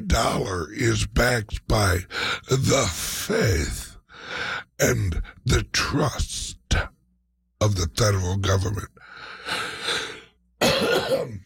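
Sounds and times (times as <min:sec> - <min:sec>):
speech: 0:00.1 - 0:07.0, 0:07.6 - 0:09.8
person coughing: 0:10.6 - 0:11.4.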